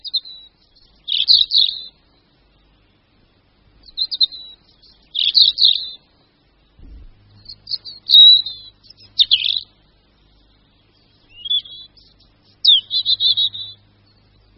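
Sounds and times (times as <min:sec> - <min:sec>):
European robin singing: 0:00.0 - 0:03.0, 0:03.7 - 0:14.5
faint low rumbles: 0:01.9 - 0:05.2, 0:06.0 - 0:14.5.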